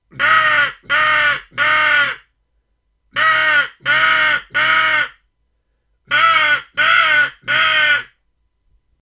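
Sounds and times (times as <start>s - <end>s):
crow decoy call: 0.2s - 2.3s, 3.2s - 5.2s, 6.1s - 8.2s.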